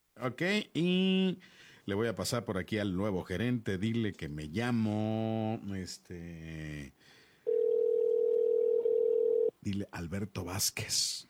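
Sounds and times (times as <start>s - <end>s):
speech: 0.2s - 7.2s, 9.6s - 11.2s
telephone line tone while calling a shop's number: 7.5s - 9.5s.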